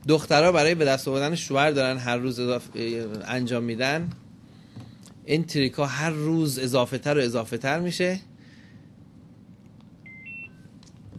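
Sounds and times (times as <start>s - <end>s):
speech: 0.0s - 4.2s, 5.3s - 8.3s
steady low hum: 0.0s - 11.1s
electronic phone beeps while being switched off: 10.0s - 10.7s.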